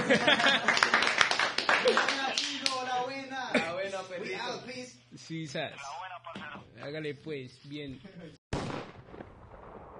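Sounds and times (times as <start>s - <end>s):
people laughing: 0.0s - 1.1s, 1.7s - 2.6s
crowd applauding with quick dense clapping: 0.0s - 2.8s
speech: 0.1s - 1.0s, 4.2s - 8.8s.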